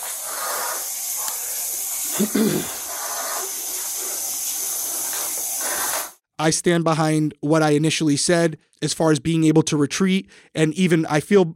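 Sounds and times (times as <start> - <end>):
boiling water spraying out with hissing steam: 0.0 - 6.2
speech: 2.2 - 2.8, 6.4 - 11.5.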